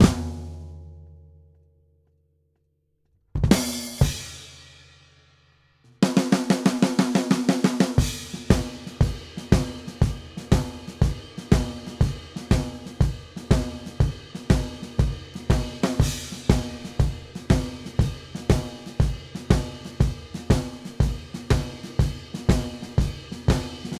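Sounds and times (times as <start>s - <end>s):
blues drum breakdown: 0.0s - 1.0s, 3.4s - 5.2s, 6.0s - 23.9s.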